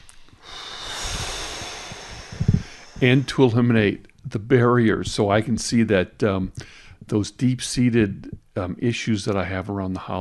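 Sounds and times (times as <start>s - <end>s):
deep breath: 0.0s - 3.8s, 6.6s - 7.1s
speech: 3.0s - 10.2s.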